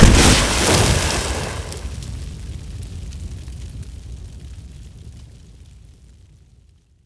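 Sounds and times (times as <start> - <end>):
flame atronach NPC dying: 0.0 - 2.1.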